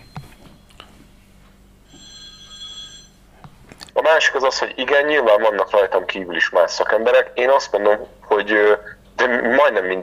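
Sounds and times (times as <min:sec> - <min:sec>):
electronic telephone ringing: 0:01.8 - 0:03.3
speech: 0:04.1 - 0:10.0.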